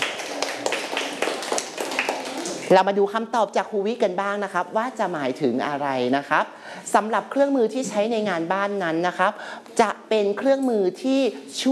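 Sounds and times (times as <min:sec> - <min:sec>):
group of children in a class clapping for their classmates: 0:00.0 - 0:02.7
speech: 0:02.7 - 0:11.7.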